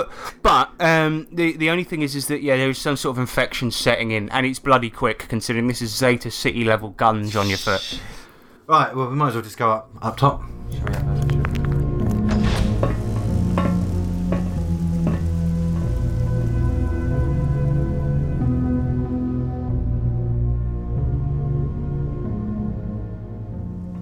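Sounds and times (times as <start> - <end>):
speech: 0.0 - 11.2
low droning background: 10.3 - 23.9
rain on hard surfaces: 10.5 - 19.9
water drips: 11.3 - 19.4.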